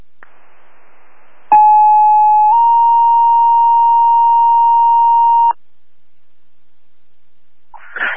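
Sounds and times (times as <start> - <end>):
two-tone fire dispatch radio cancellation tone: 1.5 - 5.6.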